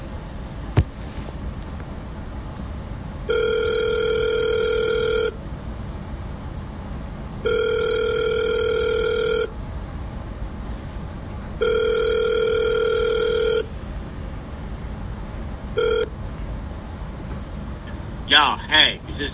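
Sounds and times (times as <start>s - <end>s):
low hum: 0.0s - 19.3s
electronic phone ringback tone: 3.3s - 5.4s, 7.4s - 9.5s, 11.6s - 13.7s, 15.8s - 16.1s.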